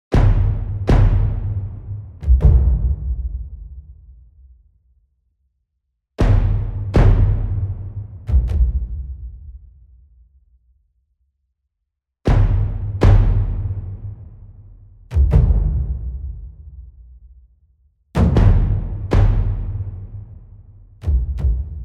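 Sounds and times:
cinematic drums: 0:00.1 - 0:04.6, 0:06.2 - 0:10.2, 0:12.3 - 0:17.4, 0:18.1 - 0:21.8.

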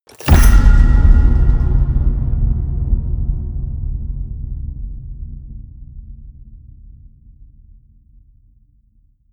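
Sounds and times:
medium metal crash with hollow ring: 0:00.1 - 0:03.1.

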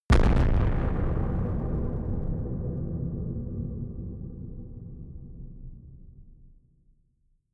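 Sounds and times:
distorted explosions: 0:00.1 - 0:06.0.

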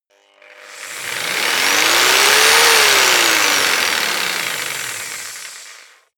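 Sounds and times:
jigsaw motor running medium fast: 0:00.0 - 0:06.1.

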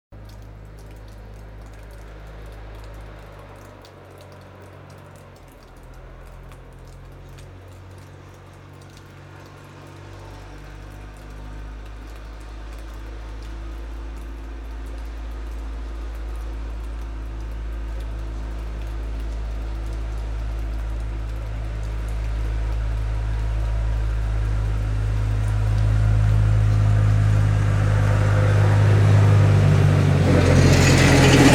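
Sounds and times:
diesel truck snowplough: 0:00.2 - 0:31.5.

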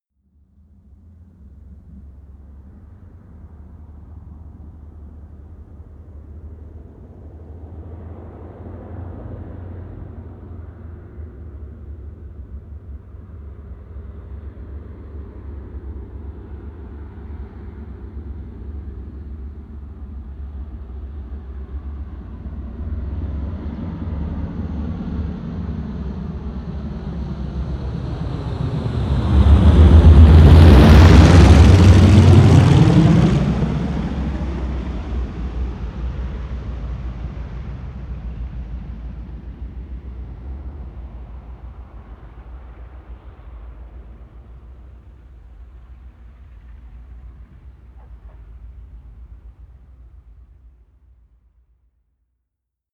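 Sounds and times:
Ju52 propeller plane flying overhead: 0:00.6 - 0:50.8.

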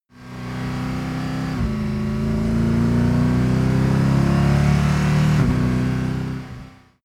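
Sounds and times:
Mercedes SLS AMG car short acceleration: 0:00.3 - 0:06.4.

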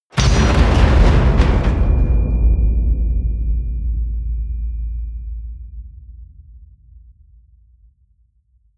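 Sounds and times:
metal hit: 0:00.1 - 0:06.7.

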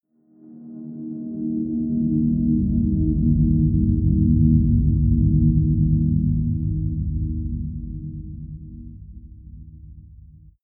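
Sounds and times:
deep atmospheric drone: 0:01.2 - 0:10.5.

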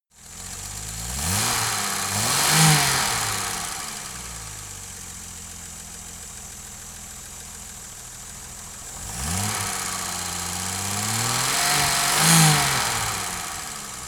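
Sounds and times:
Jaguar E-Type engine starting and revving: 0:00.3 - 0:04.6, 0:08.5 - 0:14.0.

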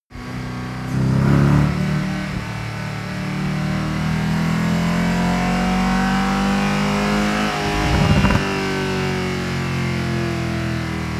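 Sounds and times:
Mercedes SLS AMG car short acceleration: 0:00.2 - 0:11.1.

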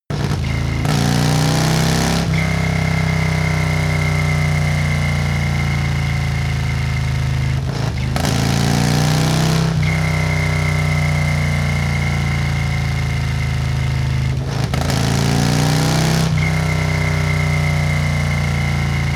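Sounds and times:
motorcycle accelerating: 0:00.1 - 0:19.1
triple whistle: 0:00.4 - 0:07.4, 0:09.8 - 0:13.6, 0:16.3 - 0:19.1.

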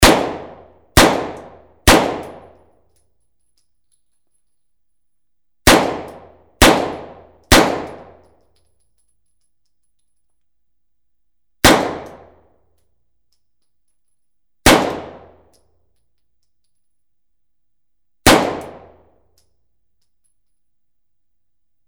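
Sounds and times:
silenced submachine gun shots: 0:00.0 - 0:02.5, 0:05.6 - 0:08.2, 0:11.6 - 0:12.4, 0:14.6 - 0:15.4, 0:18.2 - 0:19.0.

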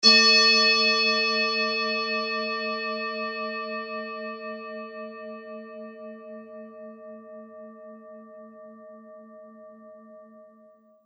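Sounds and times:
Tibetan singing bowl ringing: 0:00.0 - 0:08.8.

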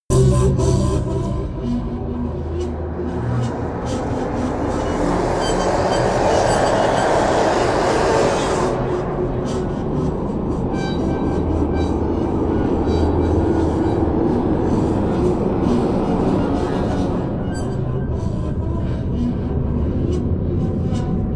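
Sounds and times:
low attacking atmospheric sound: 0:00.1 - 0:21.3.

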